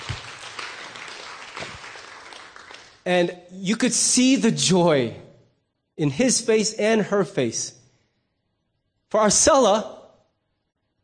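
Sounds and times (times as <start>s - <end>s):
audience applause: 0.0s - 3.0s
speech: 3.1s - 5.2s, 6.0s - 7.8s, 9.1s - 10.0s.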